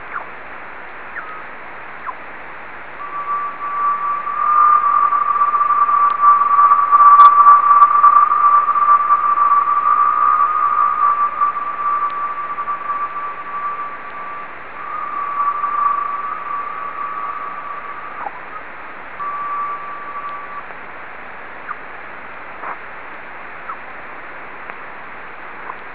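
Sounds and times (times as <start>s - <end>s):
Leonid meteor radio echoes: 2.9s - 20.7s.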